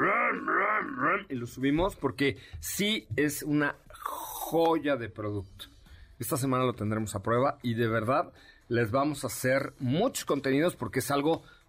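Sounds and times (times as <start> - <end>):
voice imitating a luxury SUV engine revving: 0.0 - 1.3
speech: 1.3 - 11.6.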